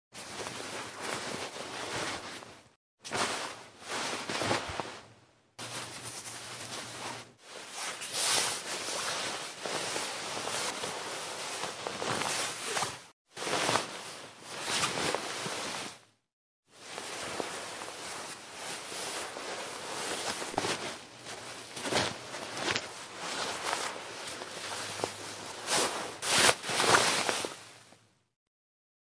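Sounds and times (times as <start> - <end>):
rustling: 0.2 - 16.1, 16.8 - 28.0.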